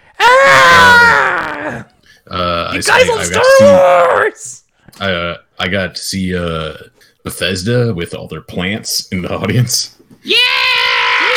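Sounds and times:
person imitating an excited video game conference fan screaming: 0.2 - 1.9, 2.8 - 4.4, 10.2 - 11.3
speech: 2.3 - 10.6.

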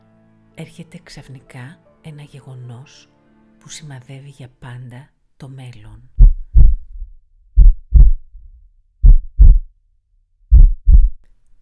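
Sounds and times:
speech: 0.6 - 6.2
heartbeat thumping in lub-dub beats: 6.1 - 9.7, 10.5 - 11.2.

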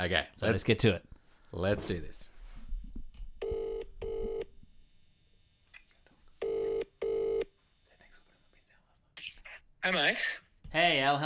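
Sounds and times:
speech: 0.0 - 2.3, 9.8 - 11.2
telephone double ringing tone heard through the line: 3.4 - 4.5, 6.4 - 7.5.

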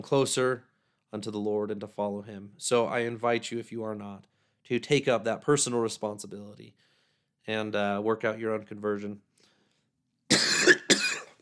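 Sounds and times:
speech: 0.0 - 9.3
harsh coughs: 10.3 - 11.4.

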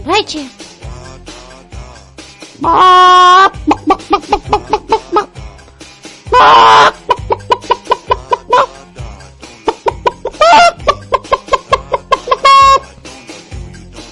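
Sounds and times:
speech: 0.1 - 0.6, 2.6 - 4.8
person imitating a calm chicken clucking and squawking: 2.6 - 5.4, 6.3 - 8.9, 9.5 - 12.9.

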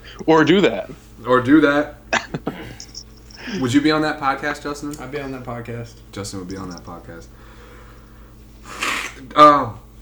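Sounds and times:
speech: 0.2 - 2.5, 3.5 - 7.5, 9.2 - 9.8
person with a runny nose blowing nose: 8.6 - 9.2.

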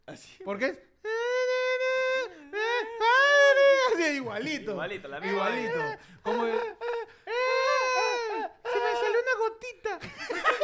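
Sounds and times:
speech: 0.2 - 0.9, 4.0 - 6.8
person imitating a crying baby: 1.0 - 4.1, 5.2 - 9.2
laughter: 2.5 - 9.3, 10.0 - 10.6.

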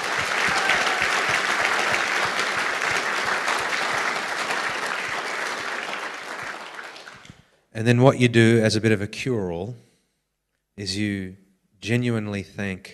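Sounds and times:
sustained applause from a sizable crowd: 0.0 - 7.4
speech: 7.8 - 9.9, 10.8 - 12.9.

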